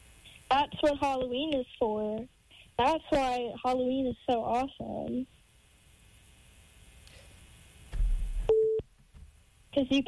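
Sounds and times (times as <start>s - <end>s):
speech: 0.5s - 5.4s, 9.8s - 10.0s
phone electronic beep: 8.5s - 8.8s.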